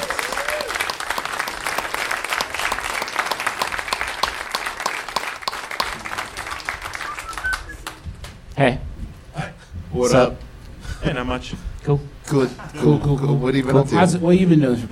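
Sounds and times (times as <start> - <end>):
crowd applauding: 0.0 - 8.1
speech: 8.6 - 8.8, 10.0 - 10.4, 11.0 - 14.9.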